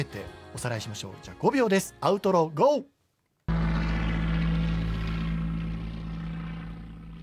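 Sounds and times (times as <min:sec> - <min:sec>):
speech: 0:00.0 - 0:02.9
light propeller aircraft flying past: 0:03.5 - 0:07.2.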